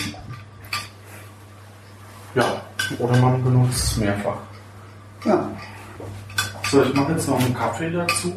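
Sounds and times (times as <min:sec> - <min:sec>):
dishes and cutlery clinking: 0:00.0 - 0:01.0, 0:02.4 - 0:08.3
low steady hum: 0:00.0 - 0:08.3
speech: 0:02.3 - 0:04.5, 0:05.2 - 0:08.3.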